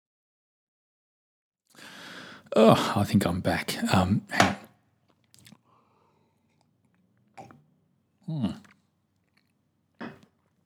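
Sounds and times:
speech: 0:02.5 - 0:04.6, 0:08.3 - 0:08.7
slurping a drink: 0:06.4 - 0:07.6, 0:08.3 - 0:09.6.

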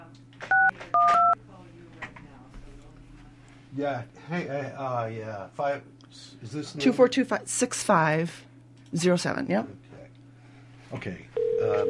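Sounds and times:
low hum: 0:00.0 - 0:11.8
electronic telephone keypad dialing tones: 0:00.5 - 0:01.4, 0:11.4 - 0:11.8
speech: 0:03.8 - 0:09.8, 0:10.9 - 0:11.8.

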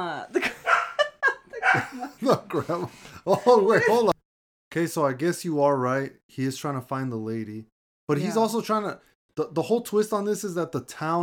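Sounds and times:
laughter: 0:00.3 - 0:04.2
dog barking: 0:00.6 - 0:02.0
speech: 0:01.7 - 0:04.1, 0:04.7 - 0:11.2.

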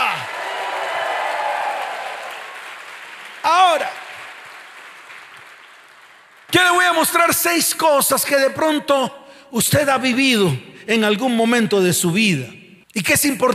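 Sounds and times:
loud rising-and-falling shout: 0:00.0 - 0:02.6, 0:03.4 - 0:04.1
congregation clapping: 0:00.0 - 0:07.9
speech: 0:06.5 - 0:13.5.

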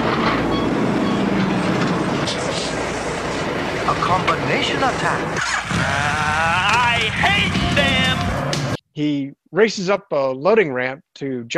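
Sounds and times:
heavy diesel engine rumbling: 0:00.0 - 0:08.8
speech: 0:04.4 - 0:06.2, 0:09.0 - 0:11.5.

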